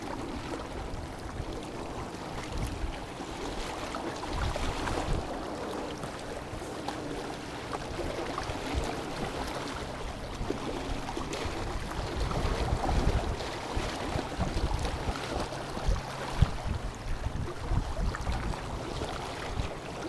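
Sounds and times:
cold wind buffeting the microphone: 0.0 - 20.0
freshwater reservoir waves in southern Scotland lapping against rocks in October: 0.0 - 20.0.

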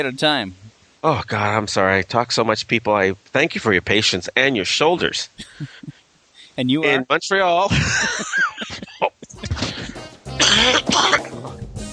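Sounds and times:
speech: 0.0 - 5.8, 6.6 - 8.8
person laughing with wheezy giggles: 5.0 - 6.0, 7.7 - 11.4
person coughing with harsh hacking bursts: 8.8 - 11.3.

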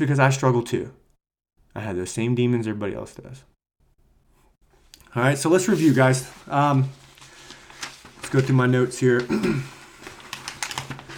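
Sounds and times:
speech: 0.0 - 1.0, 1.8 - 3.5, 5.2 - 7.0, 8.3 - 9.8
paper rustling: 5.5 - 11.1.

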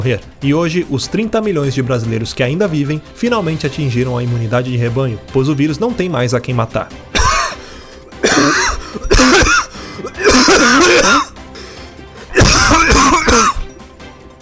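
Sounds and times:
speech: 0.0 - 7.1
person sneezing: 7.2 - 11.4, 12.3 - 13.7.

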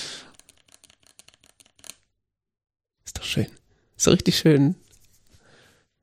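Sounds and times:
mechanical keyboard keys being typed: 0.3 - 2.0
speech: 3.3 - 4.8.

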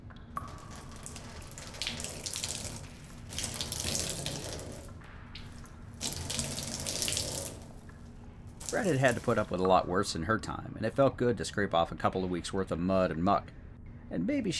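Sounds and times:
water gushing into a makeshift bathtub in a bunker: 0.0 - 9.7
speech: 8.7 - 14.5.

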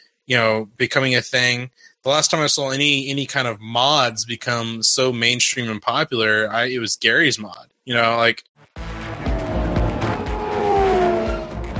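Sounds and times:
speech: 0.3 - 8.9
race car engine roaring: 8.9 - 11.7
high tire squeal: 9.0 - 11.7.

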